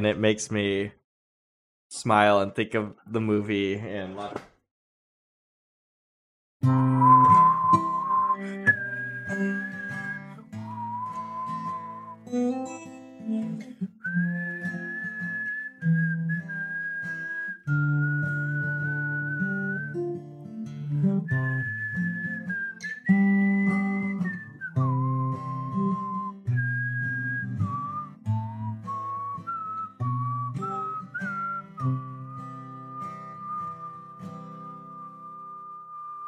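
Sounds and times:
speech: 0.0 - 1.0, 1.9 - 4.5
whistled melody of a slow song: 6.6 - 13.0, 13.9 - 20.2, 20.8 - 36.2.

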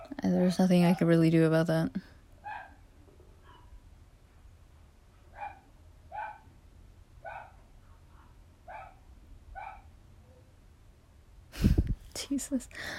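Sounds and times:
speech: 0.3 - 2.1, 12.4 - 12.9
dogs barking: 2.4 - 2.8, 3.4 - 3.8, 5.2 - 6.5, 7.2 - 10.0.

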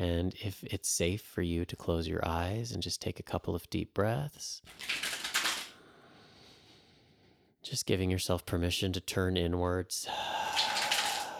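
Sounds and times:
speech: 0.0 - 5.0, 7.6 - 10.4
deck of cards being shuffled: 4.7 - 5.7.

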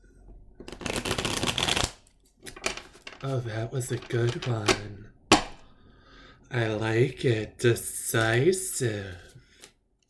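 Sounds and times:
deck of cards being shuffled for a card reading: 0.7 - 3.3
speech: 3.2 - 5.2, 6.5 - 9.3.

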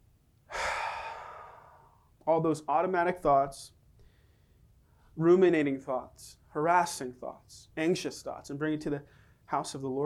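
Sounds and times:
person exhaling during a guided breathing prayer: 0.5 - 2.1
speech: 2.3 - 3.8, 5.2 - 10.0.

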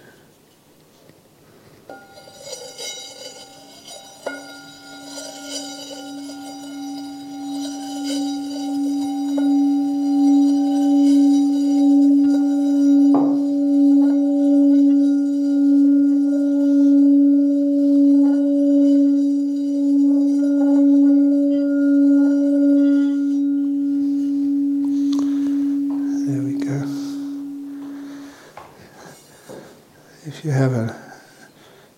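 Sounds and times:
meditation gong ringing: 1.9 - 31.0.

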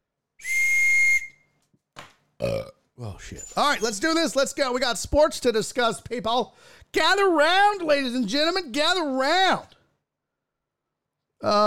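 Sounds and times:
loud shrill train whistle blast: 0.4 - 1.4
speech: 2.4 - 9.8, 11.4 - 11.6.

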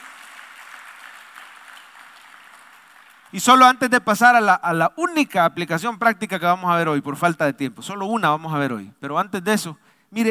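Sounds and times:
church audience applauding during a sermon: 0.0 - 3.6
speech: 3.3 - 10.2.

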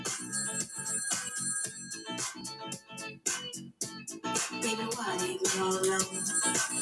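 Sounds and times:
electronic telephone ring: 0.2 - 2.2, 6.0 - 6.7
speech: 4.7 - 6.7.

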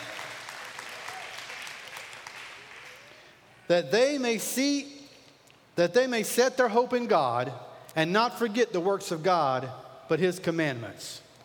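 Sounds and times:
audience applauding for children: 0.0 - 3.2
speech: 3.7 - 4.9, 5.8 - 11.2.

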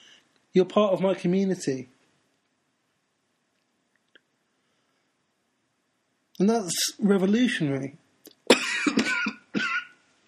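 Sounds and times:
speech: 0.5 - 1.9, 6.4 - 8.0
loud rasping cough: 8.5 - 10.0.

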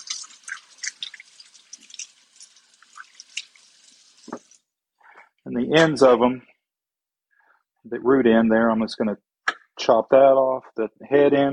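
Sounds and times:
tap water running over carrots being washed: 0.0 - 4.7
speech: 5.5 - 6.5, 7.9 - 9.3, 9.9 - 11.5.

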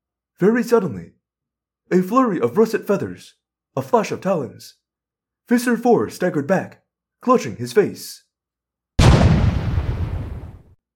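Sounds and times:
speech: 0.4 - 1.2, 1.9 - 4.8, 5.5 - 8.2
cannon blast with deep booming roar: 9.0 - 10.7.

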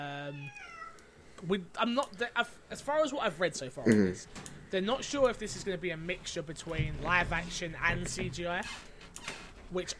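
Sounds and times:
cat meowing: 0.1 - 1.0
speech: 1.4 - 8.9, 9.7 - 9.9.

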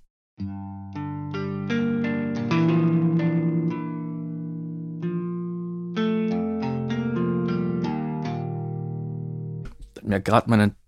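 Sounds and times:
virtual electric guitar plugin playing a clean melody: 0.4 - 9.8
speech: 10.2 - 10.8.

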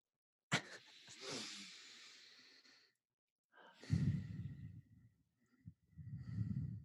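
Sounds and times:
group breathing deeply together: 0.6 - 3.0, 3.6 - 4.9, 5.5 - 6.8.

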